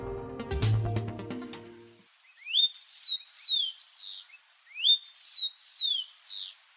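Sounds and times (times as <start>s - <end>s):
music: 0.0s - 2.0s
rufous-collared sparrow singing: 2.3s - 6.6s.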